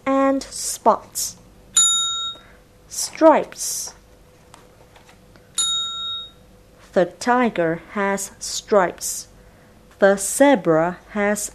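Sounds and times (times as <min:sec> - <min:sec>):
speech: 0:00.3 - 0:01.4, 0:02.9 - 0:04.0, 0:07.0 - 0:09.3, 0:10.0 - 0:11.5
bright bell ding signalling to turn the page: 0:01.8 - 0:02.5, 0:05.6 - 0:06.4.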